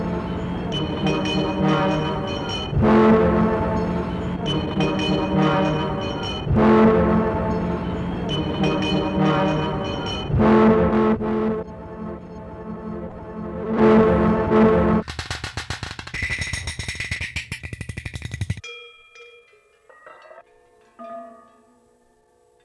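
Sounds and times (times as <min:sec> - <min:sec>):
horn loop: 0:00.0 - 0:16.9.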